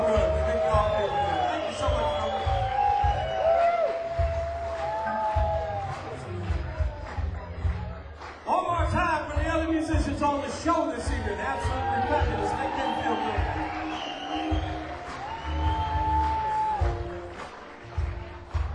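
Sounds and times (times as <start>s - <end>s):
shrill whistles: 0.0s - 5.3s, 11.9s - 16.9s
whoops: 0.0s - 6.1s, 11.5s - 17.1s
concert audience applauding and cheering: 0.0s - 18.7s.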